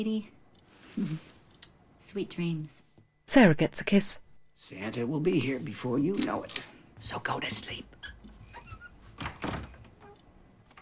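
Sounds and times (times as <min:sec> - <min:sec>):
speech: 0:00.0 - 0:00.4, 0:01.0 - 0:01.3, 0:02.1 - 0:08.0
bedroom door being pulled shut: 0:08.0 - 0:10.8.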